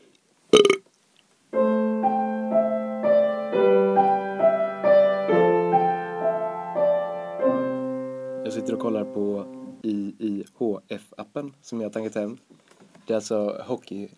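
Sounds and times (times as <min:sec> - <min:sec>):
loud burp after gulping beer: 0:00.6 - 0:00.9
music with sustained chords: 0:01.6 - 0:09.8
speech: 0:08.6 - 0:14.1.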